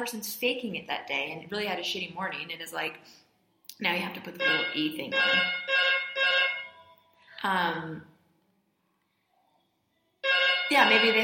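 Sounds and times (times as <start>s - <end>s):
speech: 0.0s - 3.2s, 3.8s - 6.4s, 7.4s - 8.1s, 10.7s - 11.2s
phone ringing with bright trilling bursts: 4.4s - 6.9s, 10.2s - 11.2s.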